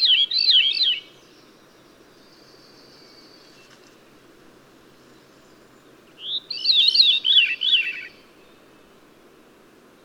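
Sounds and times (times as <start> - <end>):
bird song whistle and warbled chirps: 0.0 - 3.7, 6.2 - 8.6
background hiss: 0.0 - 10.0.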